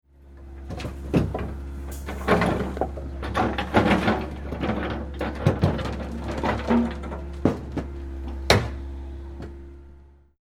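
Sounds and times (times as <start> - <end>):
large rocks rattling and clanking as shifted in a metal container: 0.7 - 7.9.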